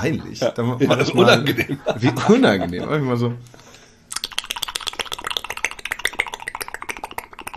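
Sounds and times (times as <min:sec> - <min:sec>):
speech: 0:00.0 - 0:03.6
laughter: 0:00.8 - 0:03.0
person's face and lips flapping in a wet blubbering flutter: 0:04.1 - 0:07.5.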